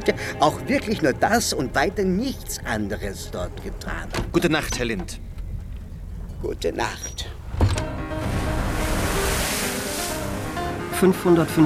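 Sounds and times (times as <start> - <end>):
speech: 0.0 - 5.3, 6.4 - 7.7, 11.0 - 11.6
high waves of fifteen feet beating against cable-laying steamship: 8.1 - 10.6.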